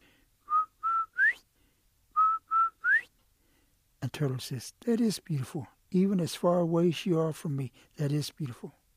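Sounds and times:
person whistling in imitation of a quail's call: 0:00.5 - 0:01.4, 0:02.2 - 0:03.1
speech: 0:04.1 - 0:08.8.

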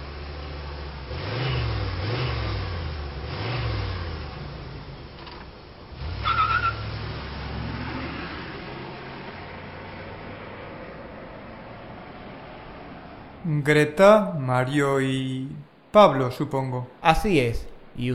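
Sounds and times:
car engine revving as it drives off: 0:00.0 - 0:13.5
speech: 0:13.5 - 0:18.1.

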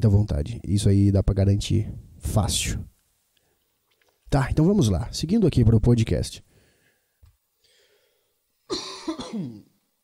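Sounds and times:
speech: 0:00.0 - 0:02.9, 0:04.3 - 0:06.5, 0:08.7 - 0:09.7
faint breathing: 0:06.5 - 0:08.6
harsh coughing: 0:08.7 - 0:09.7.

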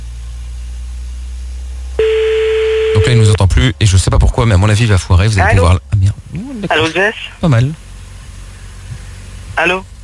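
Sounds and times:
car engine hum: 0:00.0 - 0:10.0
electronic beep: 0:02.0 - 0:03.3
speech: 0:03.0 - 0:07.8, 0:09.6 - 0:09.9.

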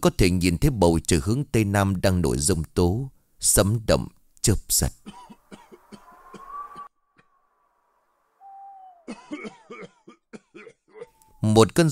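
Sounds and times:
speech: 0:00.0 - 0:05.2, 0:11.4 - 0:11.9
elderly Buddhist monk coughing: 0:05.0 - 0:06.1, 0:09.1 - 0:11.3.

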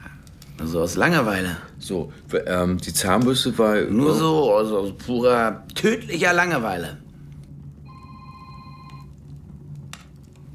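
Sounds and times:
constant low hum: 0:00.0 - 0:10.5
speech: 0:00.6 - 0:07.0
telephone ringing in a short electronic trill: 0:07.8 - 0:09.2.

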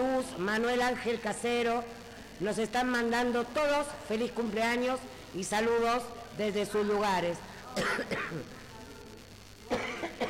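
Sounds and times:
speech: 0:00.4 - 0:08.6
person sick with the flu coughing harshly: 0:07.8 - 0:08.5, 0:09.7 - 0:10.2.

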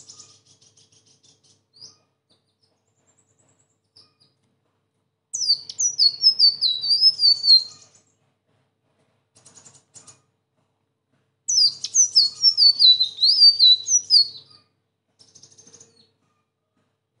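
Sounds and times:
sunbird song: 0:00.0 - 0:04.4, 0:05.4 - 0:08.2, 0:11.5 - 0:16.2.

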